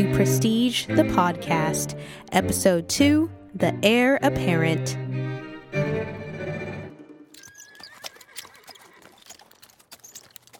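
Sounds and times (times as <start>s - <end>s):
speech: 0.0s - 5.2s
horse whinnying: 7.4s - 10.5s
horse-drawn coach hooves clattering on a northern road: 7.4s - 10.5s.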